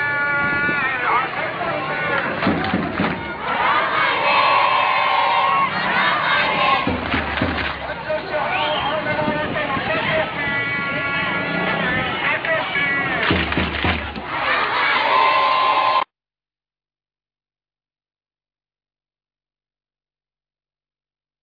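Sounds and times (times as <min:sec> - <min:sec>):
protest crowd chanting slogans and shouting: 0:00.0 - 0:16.0.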